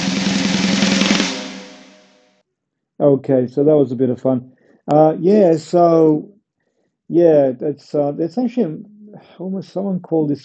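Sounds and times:
fast drum roll with ringing tail: 0.0s - 2.1s
speech: 3.0s - 6.4s, 7.1s - 10.4s.

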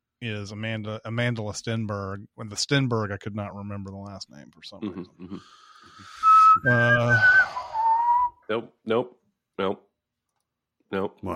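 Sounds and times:
speech: 0.2s - 7.6s, 8.5s - 9.9s, 10.9s - 11.3s
shrill human whistle: 6.0s - 8.5s
short vocal bursts: 6.6s - 7.8s.

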